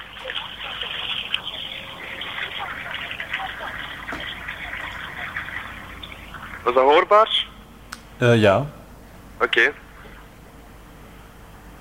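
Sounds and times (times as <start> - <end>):
water flowing and splashing from a garden waterfall: 0.0 - 7.0
speech: 6.6 - 7.4, 8.2 - 8.8, 9.4 - 9.8.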